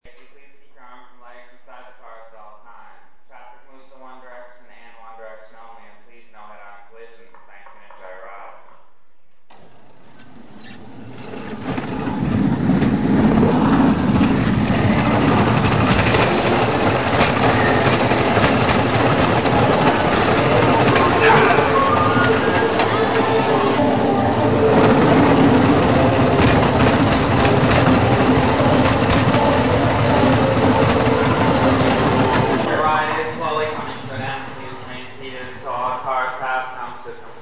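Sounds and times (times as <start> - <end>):
bumper cars: 9.5 - 37.0.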